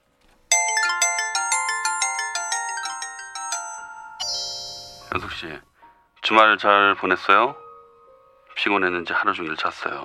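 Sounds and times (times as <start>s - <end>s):
electronic phone ringtone for an incoming call: 0.5s - 5.3s
speech: 5.2s - 7.6s, 8.6s - 10.0s.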